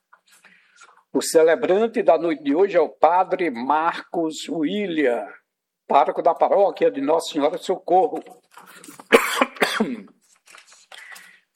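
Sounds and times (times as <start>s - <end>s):
speech: 1.1s - 10.0s
person coughing as the throat catches: 9.0s - 10.2s.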